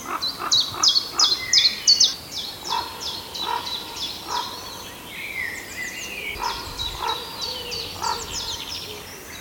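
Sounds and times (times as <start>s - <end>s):
raven calling: 0.0s - 5.0s, 6.3s - 9.4s.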